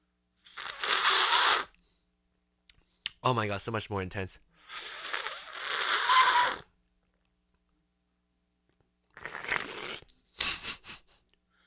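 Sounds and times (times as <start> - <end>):
person slurping tea to aerate it: 0.5 - 1.7, 4.7 - 6.6, 9.1 - 10.1
speech: 3.2 - 5.0.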